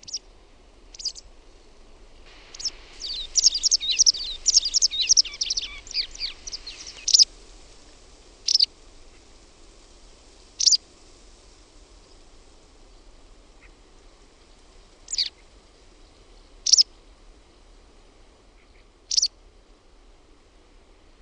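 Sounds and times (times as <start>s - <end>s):
White wagtail song: 2.2s - 11.0s, 15.0s - 15.5s
white wagtail sharp call notes: 2.5s - 7.2s, 8.5s - 8.7s, 15.1s - 15.3s.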